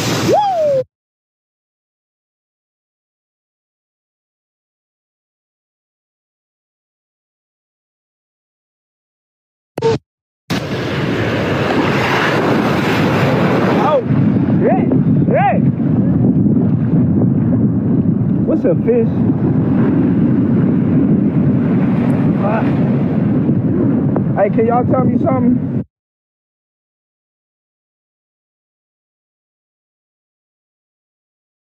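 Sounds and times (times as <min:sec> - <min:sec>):
steady wind on the open ocean: 0:00.0 - 0:00.9, 0:09.8 - 0:25.9
speech: 0:18.6 - 0:20.2, 0:24.4 - 0:25.8.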